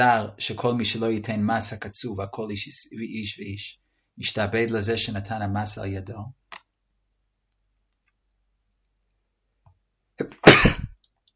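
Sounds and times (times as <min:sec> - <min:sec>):
speech: 0:00.0 - 0:06.4, 0:10.2 - 0:10.8
single loud human sneeze: 0:10.2 - 0:11.0.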